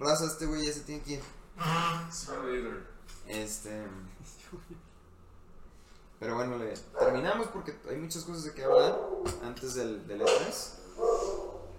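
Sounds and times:
speech: 0.0 - 4.9, 6.2 - 11.3
dog barking in short sharp yelps: 7.0 - 7.4, 8.6 - 9.4, 10.2 - 11.7.

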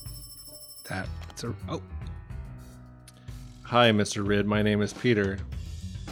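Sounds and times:
telephone ringing with a steady electronic tone: 0.0 - 1.1
speech: 0.9 - 2.1, 3.7 - 5.5.

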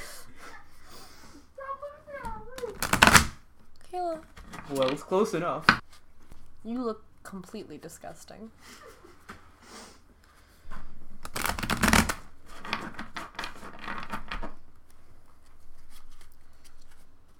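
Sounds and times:
deck of tarot cards shuffling: 2.5 - 3.4, 4.3 - 6.0, 11.2 - 17.3
crisp riffling and flapping of tarot cards: 2.6 - 3.4, 11.2 - 17.3
speech: 4.0 - 5.8, 6.6 - 8.9.

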